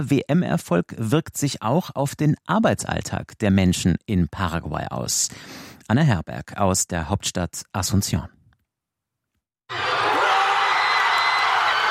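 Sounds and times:
speech: 0:00.0 - 0:08.4, 0:09.7 - 0:10.1
huge crowd of thousands of football fans cheering a goal: 0:09.7 - 0:11.8.

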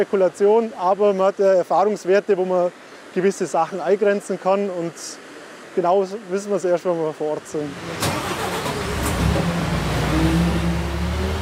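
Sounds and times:
speech: 0:00.0 - 0:05.2, 0:05.8 - 0:08.3
truck-mounted aerial work platform engine running: 0:07.7 - 0:11.4.

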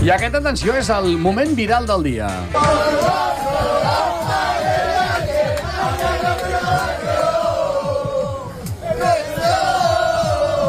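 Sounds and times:
speech: 0:00.1 - 0:03.7
passengers shouting and chanting aboard a plane: 0:02.5 - 0:10.6.

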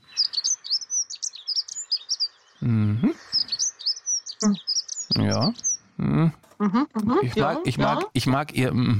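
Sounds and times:
bird chirping and trilling: 0:00.0 - 0:06.0
low voice: 0:02.6 - 0:03.3, 0:05.1 - 0:06.4, 0:07.0 - 0:08.9
speech: 0:02.6 - 0:03.4, 0:06.7 - 0:08.9.

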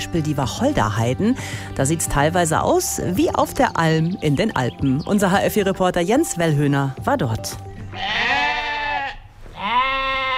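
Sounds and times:
speech: 0:00.0 - 0:08.4
sheep grazing on juniper heath in Hesse Germany bleating: 0:07.9 - 0:10.3.

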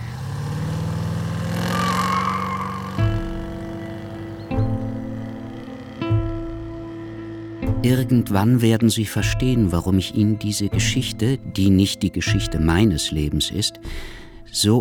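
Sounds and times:
car driving off: 0:00.0 - 0:08.7
speech: 0:07.8 - 0:14.7.

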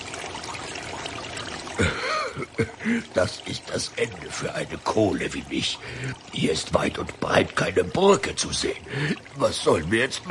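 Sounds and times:
babbling brook trickling: 0:00.0 - 0:10.3
speech: 0:01.8 - 0:10.3.

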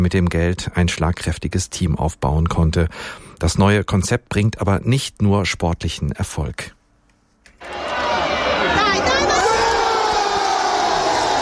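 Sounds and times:
speech: 0:00.0 - 0:06.8
large stadium crowd cheering a goal: 0:07.6 - 0:11.3.

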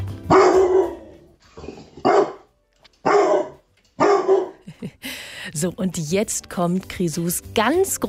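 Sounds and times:
dog barking: 0:00.3 - 0:04.6
speech: 0:05.5 - 0:08.0.

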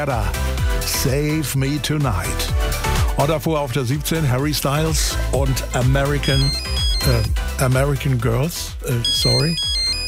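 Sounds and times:
speech: 0:00.0 - 0:09.7
mobile phone ringing with a loud melodic ringtone: 0:06.2 - 0:07.3, 0:09.0 - 0:10.0
sung voice-like melody: 0:06.2 - 0:07.4, 0:09.0 - 0:10.0.

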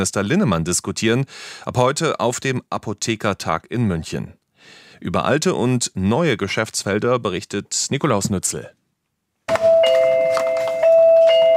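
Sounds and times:
speech: 0:00.0 - 0:08.8
pharmacy shop door chime ringing with electronic tones: 0:09.5 - 0:11.5.

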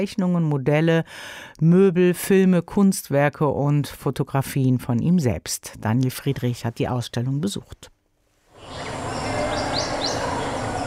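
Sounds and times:
speech: 0:00.0 - 0:07.9
distant splashing water: 0:08.5 - 0:10.8
birds chirping: 0:08.6 - 0:10.8
crickets: 0:08.6 - 0:10.8.

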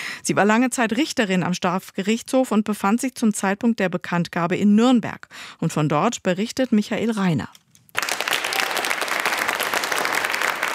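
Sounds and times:
speech: 0:00.3 - 0:07.6
audience applauding in a courtroom: 0:07.9 - 0:10.7.

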